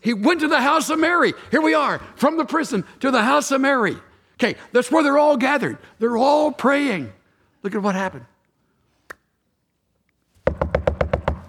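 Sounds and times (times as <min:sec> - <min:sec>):
speech: 0:00.0 - 0:08.3
heavy knocks on the door of a gate: 0:10.4 - 0:11.4.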